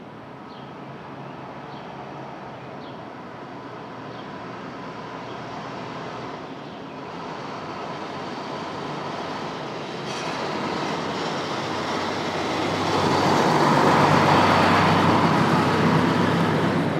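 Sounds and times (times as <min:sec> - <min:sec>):
street traffic rumble at dawn: 0:00.0 - 0:16.9
heavy vehicle passing: 0:03.4 - 0:16.9.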